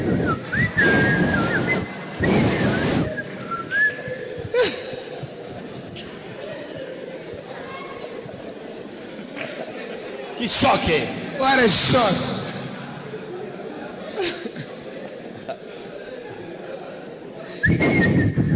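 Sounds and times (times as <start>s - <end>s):
laughter: 0.0s - 17.7s
murmur of chatter: 0.0s - 18.5s
room noise: 0.0s - 18.5s
person whistling a short wavering tune: 0.2s - 4.2s, 17.6s - 18.5s
speech: 10.5s - 12.3s.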